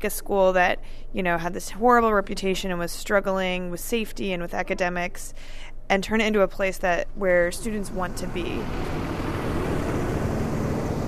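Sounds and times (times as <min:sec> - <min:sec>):
speech: 0:00.0 - 0:09.1
buses passing: 0:07.3 - 0:11.0.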